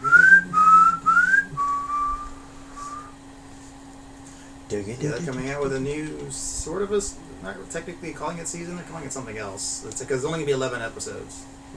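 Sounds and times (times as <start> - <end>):
person whistling a TV show theme tune: 0.0 - 3.1
speech: 4.7 - 11.7.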